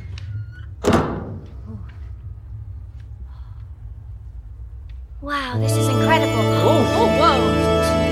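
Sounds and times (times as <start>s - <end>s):
steady low rumble: 0.0s - 8.0s
door shutting with a solid thunk: 0.8s - 1.6s
speech: 5.2s - 7.6s.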